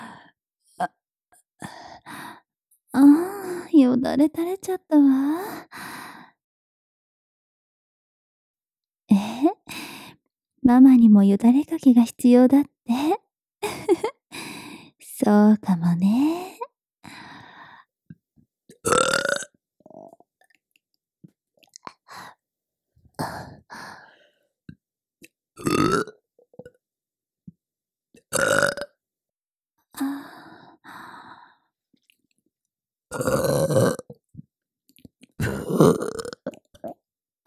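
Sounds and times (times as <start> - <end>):
speech: 0.8 - 1.0, 2.9 - 3.2, 3.8 - 6.0, 10.6 - 13.2, 15.2 - 16.5, 35.8 - 36.2
person burping after milk: 18.8 - 20.2, 25.6 - 26.8, 28.3 - 29.0, 33.1 - 34.2, 35.4 - 37.0.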